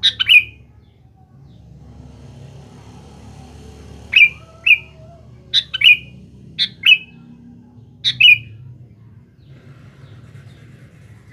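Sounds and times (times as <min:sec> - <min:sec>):
sooty-headed bulbul song: 0:00.0 - 0:00.7, 0:04.1 - 0:07.3, 0:08.0 - 0:08.7
faint low rumble: 0:00.6 - 0:11.3.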